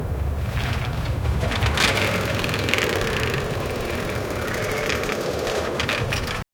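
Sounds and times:
bike tire treads rolling: 0.0s - 6.5s.

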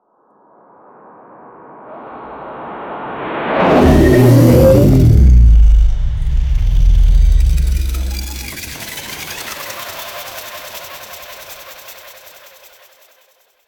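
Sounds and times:
impacts: 3.6s - 8.8s.

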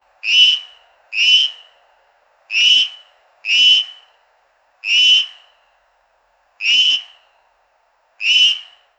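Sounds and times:
tungara frog calls: 0.2s - 1.8s, 2.5s - 4.2s, 4.8s - 5.6s, 6.6s - 7.3s, 8.2s - 8.9s.

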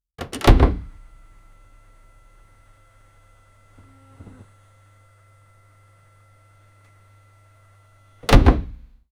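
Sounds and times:
Peugeot 205 car door opening: 0.2s - 1.0s, 8.2s - 8.8s.

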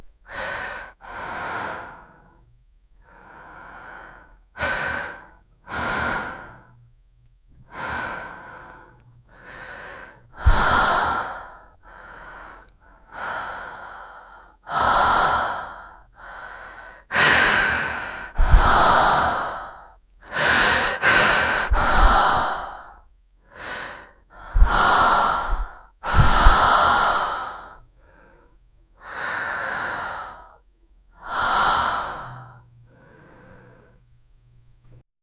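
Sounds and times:
woman breathing slowly: 0.0s - 6.8s, 7.6s - 35.0s.

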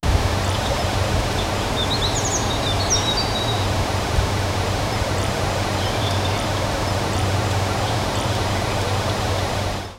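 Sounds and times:
gentle wind in a forest: 0.0s - 9.9s.

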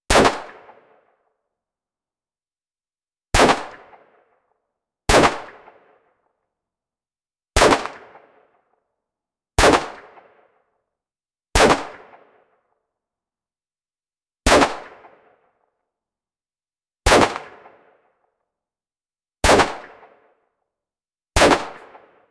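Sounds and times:
various gunshots: 0.1s - 1.0s, 3.3s - 4.2s, 5.1s - 6.0s, 7.6s - 8.4s, 9.6s - 10.4s, 11.6s - 12.4s, 14.4s - 15.4s, 17.1s - 18.0s, 19.4s - 20.2s, 21.4s - 22.2s.

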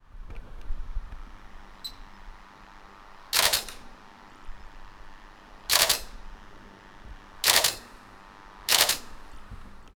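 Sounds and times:
camera shutters outdoors: 3.3s - 3.9s, 5.7s - 6.2s, 7.4s - 8.0s, 8.7s - 9.2s.

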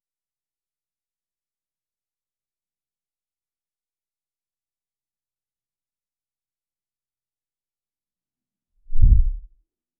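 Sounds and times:
menu open and close whoosh: 8.9s - 9.5s.

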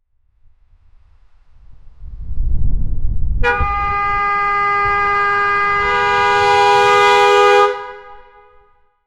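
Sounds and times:
18 wheeler truck air horn: 3.4s - 9.0s.

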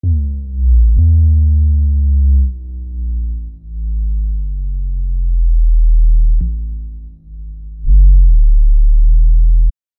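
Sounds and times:
powerful bass drop in an electronic music track: 0.0s - 9.7s.

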